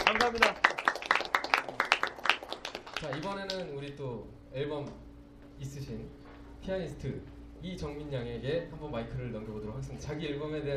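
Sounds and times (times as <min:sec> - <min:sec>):
small audience clapping at a live music event: 0:00.0 - 0:03.8
speech: 0:00.1 - 0:00.6, 0:03.0 - 0:10.7.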